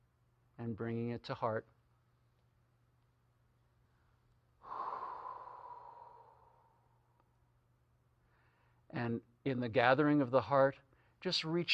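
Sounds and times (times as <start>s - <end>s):
speech: 0.6s - 1.8s, 9.0s - 11.7s
long soft exhale into cupped hands: 4.6s - 7.2s.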